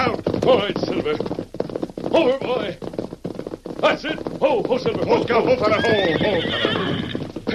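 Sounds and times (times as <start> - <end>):
speech: 0.0 - 1.4, 2.1 - 2.9, 3.8 - 7.5
horse snorting: 0.9 - 7.5
horse whinnying: 5.1 - 7.5.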